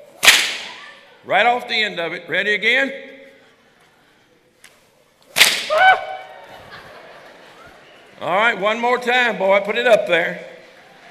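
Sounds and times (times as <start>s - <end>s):
whip crack: 0.1s - 0.8s, 5.3s - 6.2s
speech: 1.2s - 3.1s, 8.2s - 10.5s
laughter: 6.2s - 8.3s.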